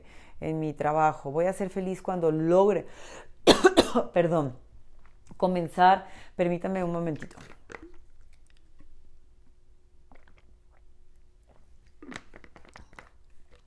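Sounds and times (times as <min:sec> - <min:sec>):
speech: 0:00.4 - 0:04.6, 0:05.4 - 0:07.6
person swallowing water with wet clicks and gulps: 0:07.2 - 0:08.9, 0:10.0 - 0:13.6
person sipping water: 0:07.2 - 0:09.0, 0:10.0 - 0:13.6.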